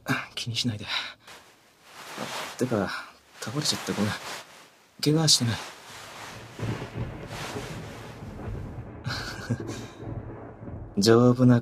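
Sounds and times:
speech: 0:00.4 - 0:01.2, 0:02.2 - 0:04.4, 0:05.0 - 0:05.8, 0:11.0 - 0:11.5
steady wind-like noise: 0:01.3 - 0:08.8
thunder rumbling: 0:05.6 - 0:11.4.

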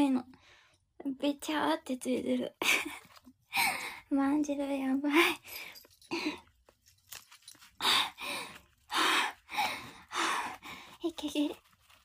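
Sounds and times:
speech: 0:00.0 - 0:06.4, 0:11.0 - 0:11.6
heavy panting after exercise: 0:07.8 - 0:11.0.

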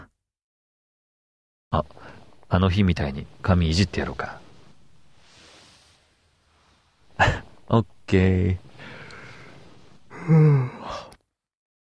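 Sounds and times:
speech: 0:01.7 - 0:04.4, 0:07.2 - 0:08.7, 0:10.3 - 0:11.1
exhausted person yawning: 0:10.1 - 0:11.2.

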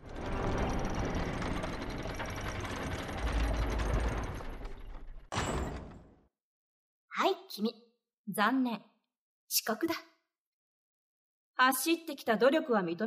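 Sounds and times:
school main gate being closed, rattling and grinding: 0:00.0 - 0:06.1
speech: 0:07.6 - 0:08.9, 0:09.5 - 0:10.1, 0:11.6 - 0:13.0.

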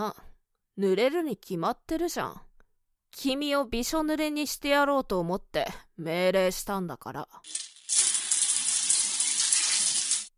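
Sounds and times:
speech: 0:00.0 - 0:00.2, 0:00.8 - 0:02.5, 0:03.1 - 0:08.0
shower head spraying water: 0:07.5 - 0:10.3.

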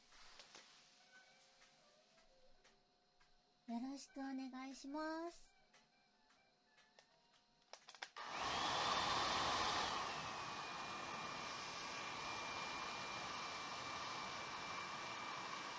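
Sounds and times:
speech: 0:03.7 - 0:05.5
hair dryer blowing as hair is dried: 0:08.2 - 0:15.7.

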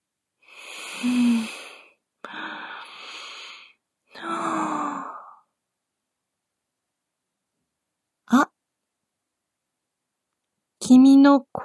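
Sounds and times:
person breathing deeply and slowly to calm down: 0:00.4 - 0:05.5
speech: 0:10.9 - 0:11.6.

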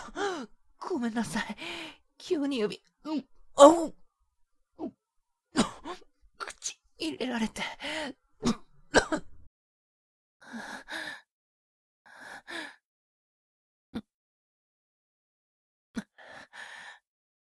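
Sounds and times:
speech: 0:01.0 - 0:04.0, 0:04.8 - 0:09.3, 0:10.5 - 0:11.2
person coughing and clearing throat: 0:05.6 - 0:06.0, 0:08.4 - 0:09.5.

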